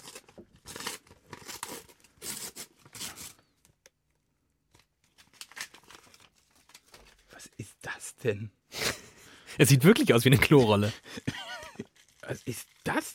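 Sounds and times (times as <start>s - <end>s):
crinkling and tearing of wrapping paper from a gift being unwrapped: 0.0s - 3.6s, 4.7s - 7.6s, 10.0s - 13.1s
speech: 8.2s - 8.6s, 9.6s - 11.2s
laughter: 10.6s - 11.9s.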